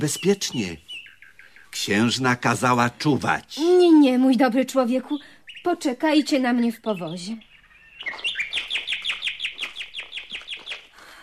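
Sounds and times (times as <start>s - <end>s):
speech: 0.0s - 0.9s, 1.7s - 7.5s
nightingale singing: 0.0s - 11.2s.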